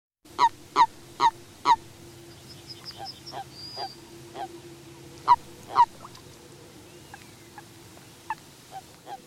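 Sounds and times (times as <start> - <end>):
low steady hum: 0.3 - 9.2
Common toad croaking: 0.4 - 1.8, 3.0 - 4.5, 5.2 - 6.2.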